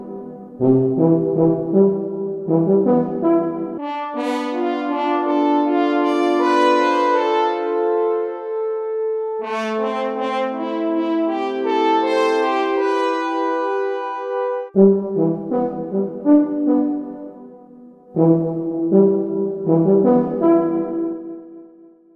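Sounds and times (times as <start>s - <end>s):
tube trumpets fanfare: 0.6s - 17.2s, 18.1s - 21.4s.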